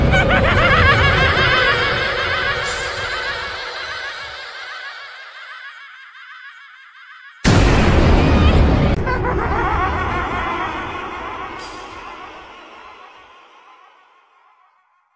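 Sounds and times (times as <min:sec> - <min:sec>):
zombie game over laugh: 0:00.1 - 0:07.6, 0:08.9 - 0:13.2.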